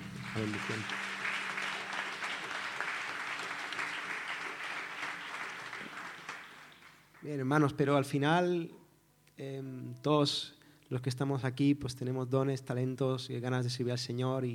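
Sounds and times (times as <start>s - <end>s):
audience applause: 0.0s - 7.2s
speech: 0.4s - 1.0s, 7.2s - 8.8s, 9.4s - 14.5s.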